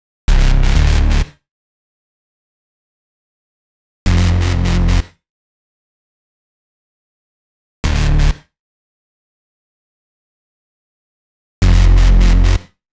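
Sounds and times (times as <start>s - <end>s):
electro synth bass in D minor: 0.3s - 1.3s, 4.1s - 5.0s, 7.9s - 8.3s, 11.6s - 12.6s.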